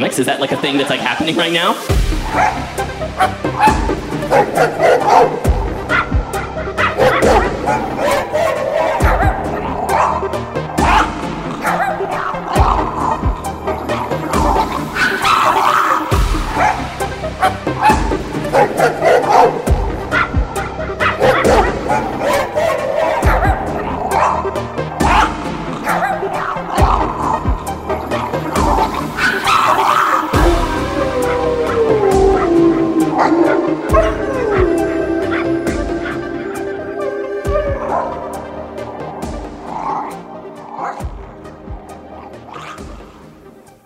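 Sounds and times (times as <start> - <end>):
speech: 0.0 - 5.6
pack of chihuahuas barking and yipping frantically: 2.2 - 6.2, 6.8 - 43.2.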